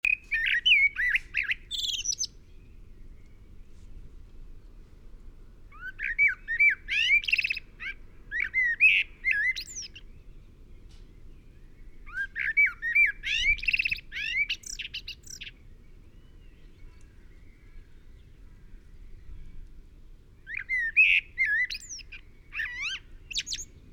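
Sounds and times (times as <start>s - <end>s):
common blackbird song: 0.0s - 4.8s, 5.6s - 23.9s.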